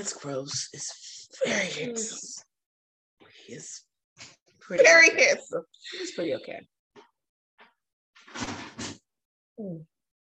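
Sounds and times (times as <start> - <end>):
speech: 0.0 - 2.5, 3.4 - 6.7, 9.6 - 9.9
door swinging shut with a rattling clunk: 8.2 - 9.0.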